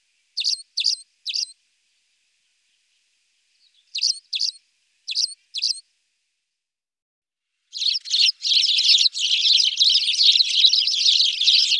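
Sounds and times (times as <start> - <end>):
Spanish sparrow chirping and chattering: 0.4 - 1.6, 3.6 - 5.8, 7.7 - 11.7.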